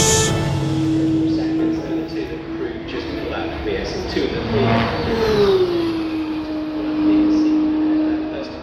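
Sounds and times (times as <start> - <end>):
Formula 1 car engines roaring past at Silverstone: 0.0 - 8.6
track noise at Silverstone: 0.0 - 8.6.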